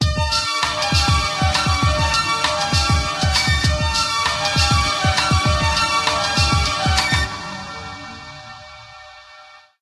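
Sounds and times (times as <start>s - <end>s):
string ensemble on a phone: 0.3s - 9.6s.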